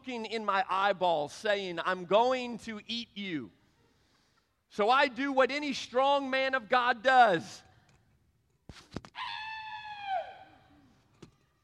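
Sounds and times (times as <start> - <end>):
speech: 0.0 - 3.6, 4.7 - 7.6
man screaming loudly: 9.2 - 10.7.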